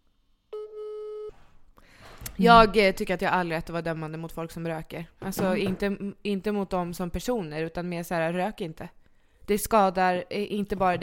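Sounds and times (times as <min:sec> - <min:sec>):
outgoing phone call tone: 0:00.6 - 0:01.4
speech: 0:02.4 - 0:11.0.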